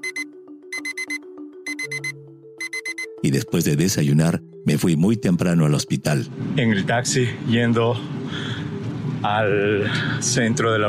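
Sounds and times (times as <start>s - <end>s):
electronic alarm clock beeping: 0.0s - 3.2s
speech: 3.2s - 8.5s, 9.2s - 10.8s.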